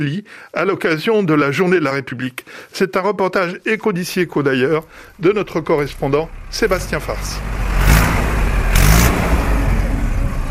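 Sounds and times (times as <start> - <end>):
speech: 0.0 - 7.7
heavy tractor engines rumbling and revving in a convoy: 4.8 - 10.4.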